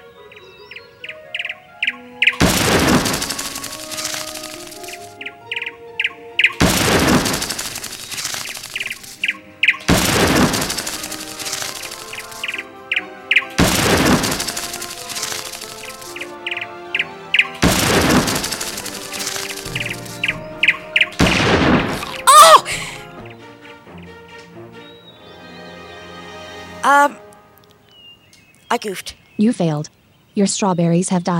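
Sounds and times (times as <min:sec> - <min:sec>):
small birds chirping in a strawberry field: 0:00.0 - 0:31.3
blank gunshots fired to scare birds in a strawberry field: 0:02.4 - 0:05.0, 0:06.6 - 0:09.1, 0:09.8 - 0:12.4, 0:13.5 - 0:16.0, 0:17.5 - 0:22.2
speech: 0:28.7 - 0:31.3.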